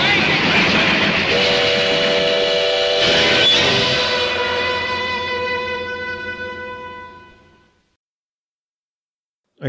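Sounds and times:
steam train rumbling: 0.0s - 5.5s
steam train whistle shrieking: 1.2s - 7.8s.

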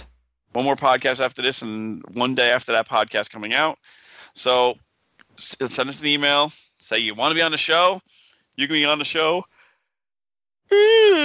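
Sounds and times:
speech: 0.6s - 9.5s, 10.7s - 11.2s
person yawning: 10.7s - 11.2s.

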